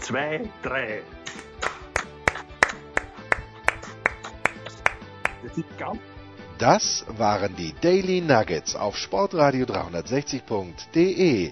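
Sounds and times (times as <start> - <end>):
speech: 0.1 - 1.2, 5.4 - 11.4
small group clapping in unison: 1.3 - 5.6.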